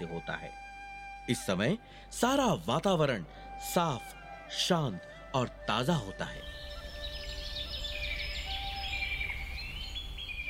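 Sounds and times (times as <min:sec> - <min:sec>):
speech: 0:00.0 - 0:00.6, 0:01.3 - 0:06.7
many birds chirping and twittering in the morning: 0:05.7 - 0:10.4.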